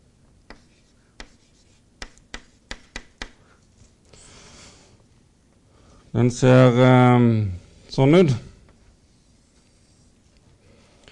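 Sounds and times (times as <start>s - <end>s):
faint tapping strokes of hand-drawing a curve: 0.5s - 3.4s
speech: 6.1s - 8.5s
soft continuous scraping stroke of hand-drawing a curve: 9.0s - 10.4s.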